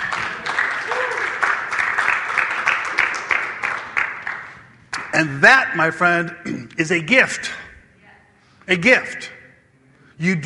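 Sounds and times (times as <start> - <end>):
audience clapping rhythmically: 0.0 - 5.3
speech: 5.2 - 7.6, 8.7 - 9.4, 10.2 - 10.4.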